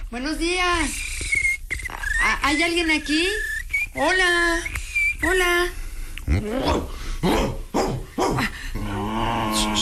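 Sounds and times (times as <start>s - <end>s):
speech: 0.1s - 1.1s, 2.2s - 7.5s
dog growling with a sustained rumble: 6.3s - 9.7s
dog barking in quick loud bursts: 7.2s - 8.5s.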